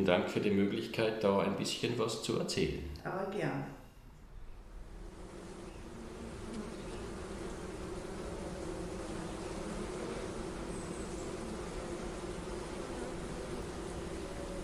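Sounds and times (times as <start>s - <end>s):
speech: 0.0s - 3.8s
many bees buzzing in a garden: 4.4s - 14.6s
soft airy hiss: 4.5s - 14.6s.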